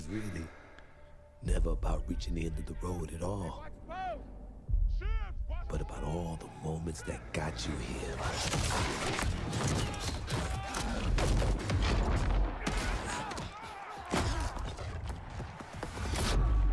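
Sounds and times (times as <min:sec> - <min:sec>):
speech: 0:00.1 - 0:00.6, 0:01.4 - 0:04.3, 0:05.7 - 0:11.8
loud deep booming impacts of slow-motion door breaching: 0:01.4 - 0:13.2
lingering crackle of debris: 0:07.7 - 0:16.7
splintering crashes of slow-motion door breaching: 0:08.1 - 0:16.7.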